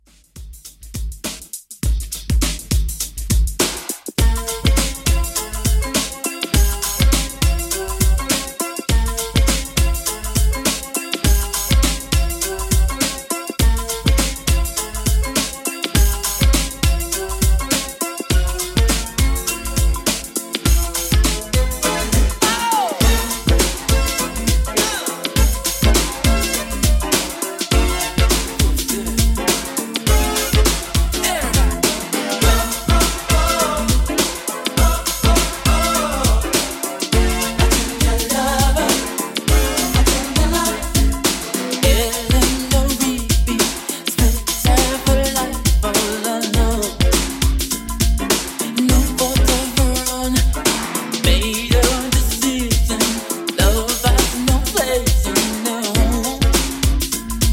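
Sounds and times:
1980s funk music at 102 BPM: 0:00.0 - 0:57.5.

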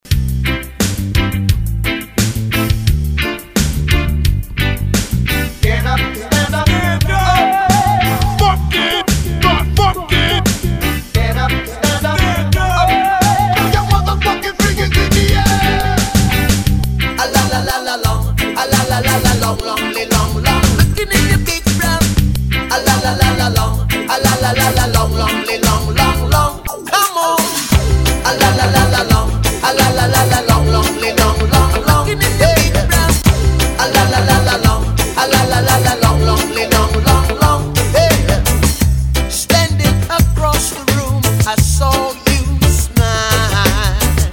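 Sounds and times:
1990s reggae drum beat: 0:00.0 - 0:44.3.

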